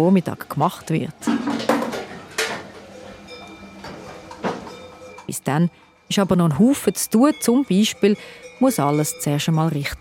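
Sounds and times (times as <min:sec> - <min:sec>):
speech: 0:00.0 - 0:01.6, 0:05.3 - 0:10.0
milk dishes clattering during washing up at an alpine cheese dairy: 0:01.2 - 0:05.3
pots and plates clanking: 0:01.2 - 0:05.4.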